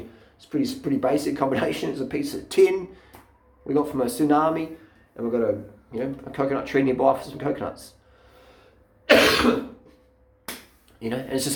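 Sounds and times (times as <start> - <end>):
speech: 0.4 - 3.0, 3.6 - 8.0, 9.1 - 9.7, 11.0 - 11.5
harsh raspy cough brought on by cat fur: 9.1 - 9.8.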